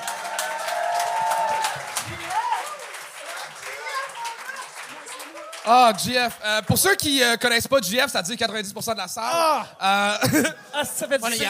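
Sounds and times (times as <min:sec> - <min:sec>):
audience whooping and shouting: 0:00.0 - 0:03.0
audience clapping: 0:00.0 - 0:07.6
speech: 0:05.7 - 0:11.4.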